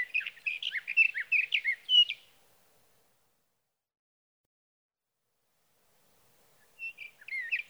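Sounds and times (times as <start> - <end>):
Sage Thrasher singing warbles and slurred whistles: 0.0 - 2.3, 6.8 - 7.6.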